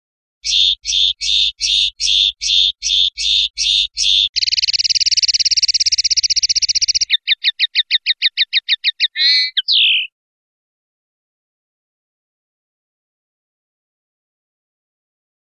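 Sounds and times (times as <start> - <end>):
European goldfinch song: 0.4 - 10.2.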